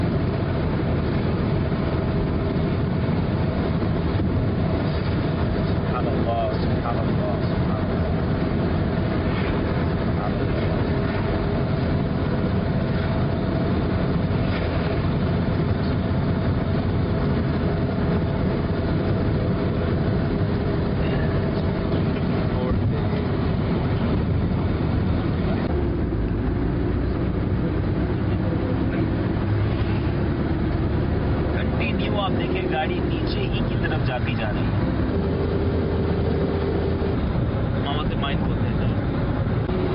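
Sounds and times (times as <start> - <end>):
car engine hum: 0.0 - 39.9
car tire noise: 0.0 - 39.9
interior road rumble of a car driving downhill: 0.0 - 39.9.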